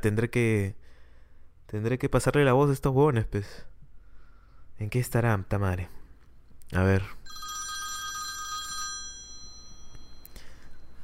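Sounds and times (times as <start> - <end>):
speech: 0.0 - 0.8, 1.7 - 3.7, 4.8 - 6.0, 6.7 - 7.4
phone ringing with electronic tone: 7.3 - 11.0.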